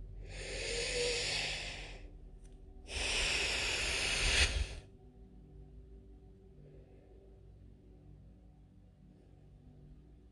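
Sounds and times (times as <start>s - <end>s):
deep breaths during a breathing exercise: 0.1s - 2.2s, 2.9s - 4.9s.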